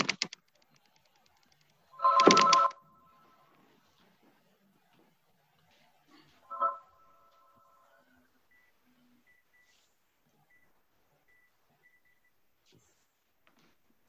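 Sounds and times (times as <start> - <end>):
telephone ringing in short electronic bursts: 1.9 - 3.5, 6.4 - 8.2.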